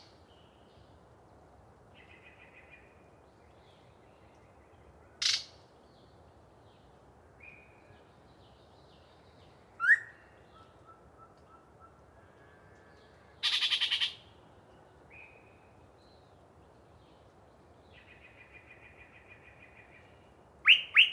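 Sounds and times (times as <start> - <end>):
faint steady low hiss: 0.0 - 21.1
Yellow-breasted Chat singing varied calls: 9.8 - 12.0, 13.4 - 14.2, 18.0 - 21.1.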